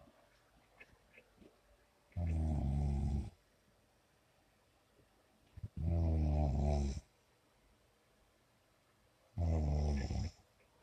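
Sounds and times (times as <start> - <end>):
sleeping man snoring loudly: 2.3 - 3.3, 5.8 - 7.0, 9.4 - 10.3.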